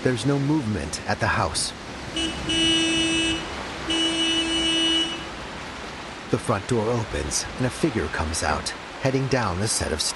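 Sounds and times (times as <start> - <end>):
speech: 0.0 - 2.9, 6.3 - 10.1
car horn honking: 2.1 - 5.4.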